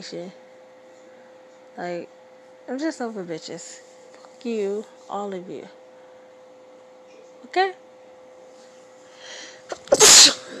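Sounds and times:
speech: 0.0s - 0.4s, 1.8s - 5.8s, 7.5s - 7.8s
loud sneeze: 9.7s - 10.5s.

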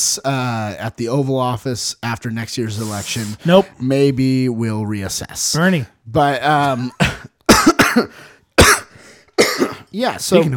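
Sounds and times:
speech: 0.2s - 7.3s, 8.0s - 8.8s, 10.0s - 10.5s
person coughing: 6.7s - 9.9s.

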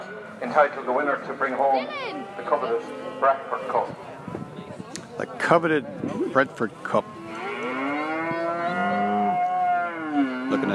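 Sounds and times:
speech: 0.4s - 4.4s, 5.2s - 7.2s, 10.5s - 10.7s
Hereford cattle lowing at a livestock show ring: 1.9s - 3.9s, 7.0s - 10.7s.

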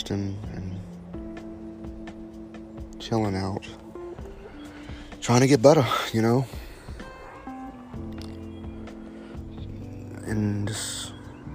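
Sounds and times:
motorcycle engine roaring on the road, shifting gears: 0.0s - 11.5s
speech: 0.1s - 0.5s, 3.1s - 3.8s, 5.3s - 6.6s.

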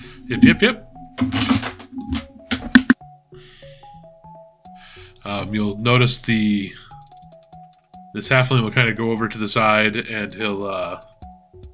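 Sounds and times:
speech: 0.3s - 1.6s, 5.2s - 6.9s, 8.2s - 11.1s
keyboard typing: 1.2s - 3.0s, 5.0s - 5.3s, 7.0s - 7.9s.

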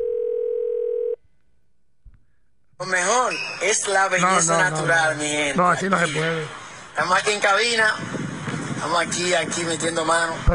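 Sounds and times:
telephone dial tone while placing a call: 0.0s - 1.2s
speech: 2.8s - 8.2s, 8.8s - 10.5s.

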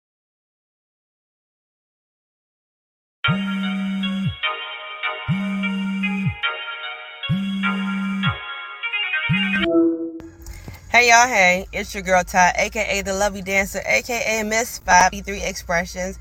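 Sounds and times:
phone ringtone ringing with bright repeating tune: 3.3s - 10.3s
speech: 11.0s - 16.1s.

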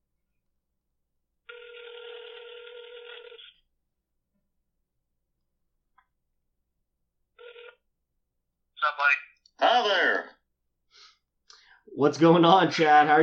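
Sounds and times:
outgoing phone call ringback tone: 1.5s - 3.6s, 7.4s - 7.8s
speech: 8.9s - 10.3s, 12.0s - 13.2s.

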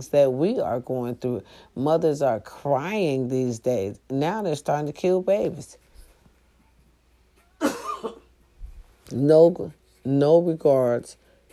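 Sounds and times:
speech: 0.0s - 5.8s, 9.1s - 11.2s
harsh cough with rasping follow-up: 7.6s - 8.3s.

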